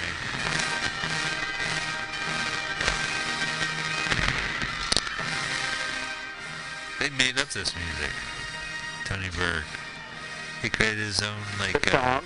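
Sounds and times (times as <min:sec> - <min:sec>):
fireworks bursting: 0:00.0 - 0:06.2, 0:11.5 - 0:12.2
speech: 0:07.0 - 0:08.3, 0:09.1 - 0:09.8, 0:10.6 - 0:12.2.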